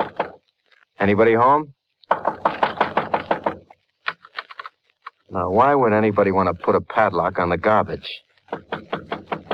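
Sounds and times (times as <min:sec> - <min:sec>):
knocking on a small wooden shed door: 0:00.0 - 0:00.4, 0:02.1 - 0:03.7, 0:08.5 - 0:09.5
speech: 0:01.0 - 0:01.8, 0:05.3 - 0:08.3.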